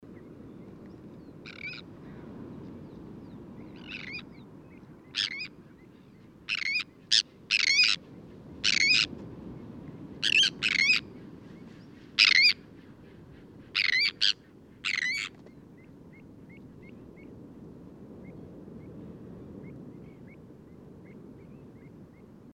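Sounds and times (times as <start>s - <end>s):
Sterna sandvicensis calling: 1.5s - 1.8s, 5.2s - 5.6s, 6.5s - 8.0s, 8.6s - 9.1s, 10.2s - 12.7s, 13.6s - 15.4s.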